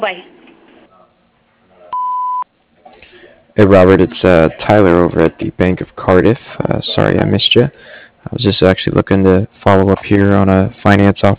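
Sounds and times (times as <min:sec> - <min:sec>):
speech: 0:00.0 - 0:00.4, 0:03.6 - 0:11.3
answering machine beep: 0:01.9 - 0:02.4.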